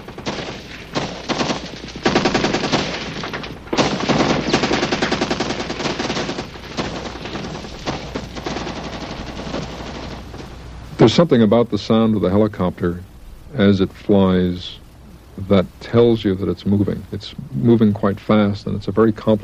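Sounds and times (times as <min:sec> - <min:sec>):
dense gunfire from several guns recorded one shot at a time: 0:00.0 - 0:11.3
speech: 0:11.0 - 0:14.8, 0:15.4 - 0:19.4.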